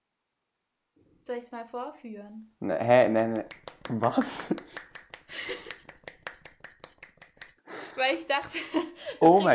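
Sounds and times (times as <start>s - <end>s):
speech: 1.2s - 4.8s, 8.1s - 9.5s
one-handed clapping: 2.8s - 7.6s
laughter: 8.5s - 9.5s.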